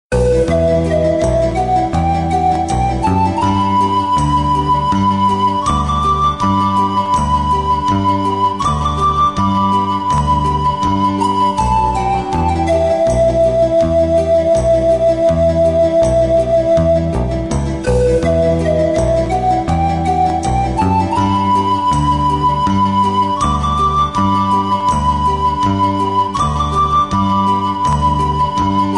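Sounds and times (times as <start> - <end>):
pan pipes ringtone melody: 0.1 - 28.9.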